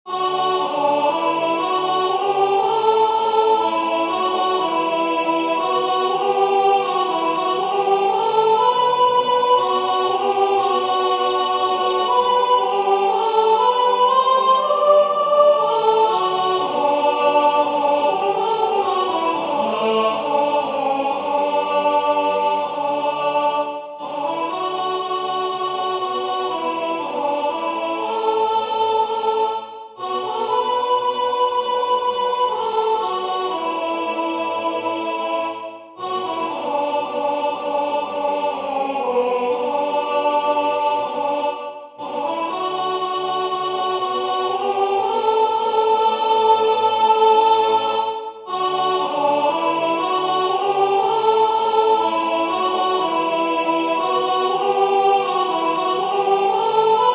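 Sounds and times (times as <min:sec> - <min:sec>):
soprano singing a French liturgical song: 0:00.0 - 0:57.1.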